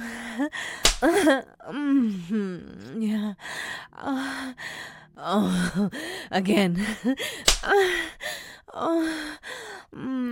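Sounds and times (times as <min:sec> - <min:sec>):
drawn-out wavering vocal sighs and moans: 0:00.0 - 0:10.3
speech: 0:00.4 - 0:10.3
sharp slap to the face: 0:00.8 - 0:01.2, 0:07.4 - 0:07.7.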